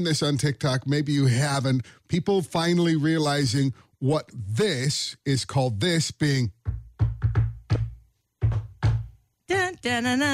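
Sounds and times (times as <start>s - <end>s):
speech: 0.0s - 6.8s, 9.5s - 10.3s
rhythmic knocking on a solid surface: 6.5s - 9.2s.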